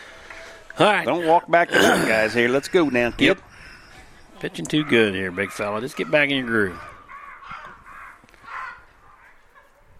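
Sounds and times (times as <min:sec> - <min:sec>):
faint outdoor background: 0:00.0 - 0:09.9
speech: 0:00.8 - 0:03.5, 0:04.4 - 0:06.9
crows cawing: 0:02.0 - 0:09.8.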